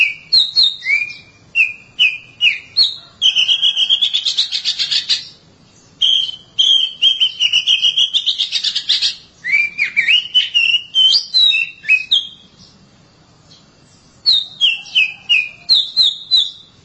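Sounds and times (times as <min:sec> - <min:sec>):
Oriental magpie-robin singing rapid whistled and slurred notes: 0:00.0 - 0:12.8, 0:13.5 - 0:16.8.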